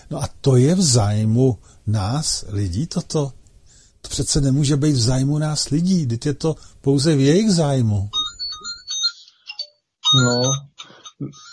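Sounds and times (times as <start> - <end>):
speech: 0.1 - 3.4, 4.0 - 8.2, 10.1 - 11.5
phone ringtone for an incoming call: 8.1 - 11.5.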